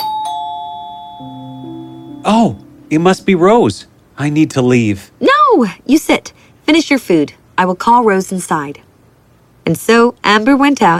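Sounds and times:
doorbell chiming ding-dong at home: 0.0s - 3.6s
speech: 2.2s - 8.9s, 9.6s - 10.9s.

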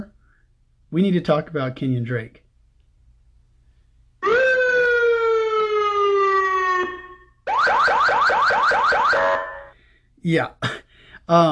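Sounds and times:
speech: 0.9s - 2.4s, 10.2s - 11.4s
panic alarm button electronic alarm siren: 4.2s - 9.8s.

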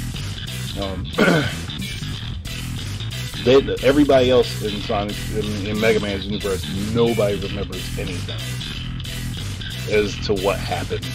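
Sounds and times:
speech: 0.8s - 1.7s, 3.4s - 8.9s, 9.9s - 11.1s
person with a dried-out throat clearing their throat: 0.8s - 2.0s
short raspy cough: 1.2s - 2.0s.

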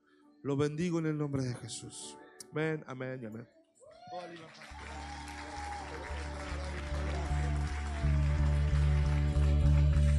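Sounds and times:
speech: 0.4s - 5.0s
audience applauding: 4.0s - 10.1s.

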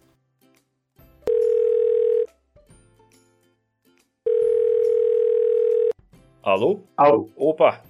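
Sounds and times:
telephone tones of an outgoing call through the handset: 1.3s - 2.3s, 4.3s - 6.0s
speech: 6.4s - 7.8s.

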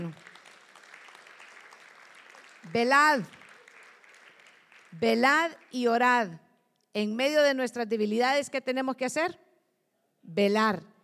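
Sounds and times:
speech: 0.0s - 0.3s, 2.6s - 3.4s, 4.9s - 9.4s, 10.2s - 10.9s
audience clapping hands: 0.0s - 6.2s.

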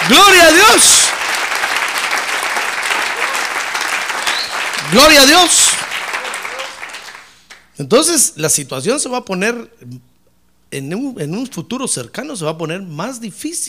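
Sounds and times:
man shouting an exclamation: 0.0s - 1.1s, 4.8s - 6.8s
audience applauding: 0.0s - 7.7s
speech: 0.1s - 1.5s, 4.9s - 5.9s, 7.8s - 10.1s, 10.7s - 13.6s.

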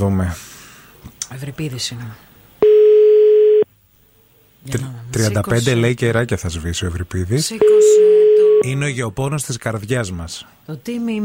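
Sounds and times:
speech: 0.0s - 0.5s, 1.3s - 2.3s, 4.6s - 11.2s
telephone ringback tone while placing a call from a landline: 2.6s - 3.7s, 7.6s - 8.6s.

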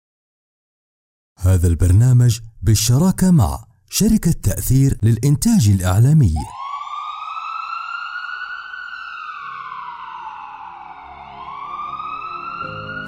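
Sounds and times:
speech: 1.4s - 6.6s
emergency vehicle siren wailing: 6.5s - 13.0s.

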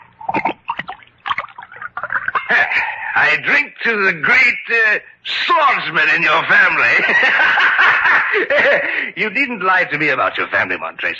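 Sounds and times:
wine being poured into a glass: 0.0s - 2.5s
laughter: 2.3s - 3.2s, 6.8s - 9.2s
speech: 2.5s - 11.1s.

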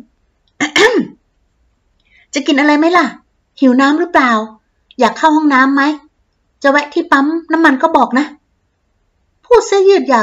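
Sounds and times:
person clearing throat: 0.6s - 1.2s
speech: 2.3s - 6.0s, 6.6s - 8.4s, 9.5s - 10.2s.

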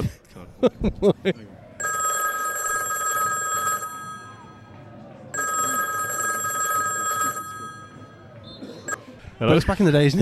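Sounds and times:
speech: 0.5s - 1.6s, 9.4s - 10.2s
telephone ringing: 1.8s - 8.4s.

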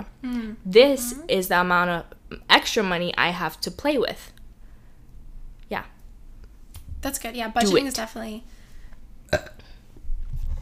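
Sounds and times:
speech: 0.2s - 4.4s, 5.7s - 5.9s, 7.0s - 8.6s
person burping: 9.3s - 9.8s.

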